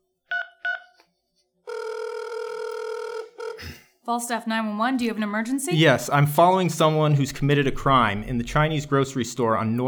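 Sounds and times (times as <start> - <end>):
cell phone keypad beeps: 0.3 - 0.9
cell phone ringing tone: 0.3 - 1.0, 1.7 - 3.8
speech: 3.6 - 9.8.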